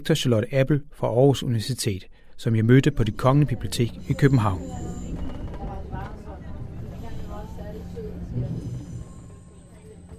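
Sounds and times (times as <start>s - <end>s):
speech: 0.0s - 5.0s
low rumbling drone inside a moving train carriage: 2.4s - 10.1s
faint murmuring voices in a train carriage: 3.0s - 10.1s.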